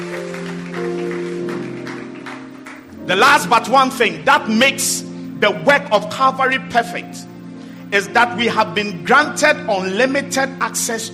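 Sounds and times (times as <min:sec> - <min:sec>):
congregation clapping during a church worship service: 0:00.0 - 0:04.0
speech: 0:03.1 - 0:07.3, 0:07.9 - 0:11.1.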